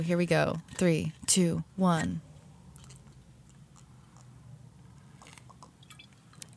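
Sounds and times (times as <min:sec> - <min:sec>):
speech: 0:00.0 - 0:02.3
person gulping down a drink: 0:02.6 - 0:06.5.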